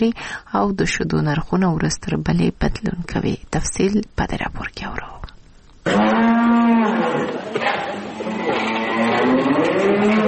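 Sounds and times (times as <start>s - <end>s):
speech: 0.0s - 8.0s
cow mooing on a small dairy cattle farm in Kandahar: 5.8s - 10.2s.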